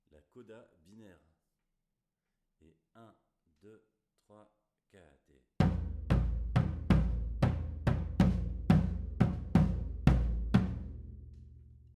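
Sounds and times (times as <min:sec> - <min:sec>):
batucada drumming: 0:05.6 - 0:11.2
bass: 0:05.6 - 0:11.9.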